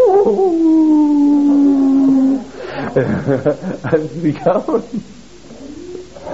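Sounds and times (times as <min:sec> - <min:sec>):
voice imitating a jackal howl: 0:00.0 - 0:02.5
speech: 0:00.3 - 0:00.6, 0:03.0 - 0:05.2
laughter: 0:02.7 - 0:05.1.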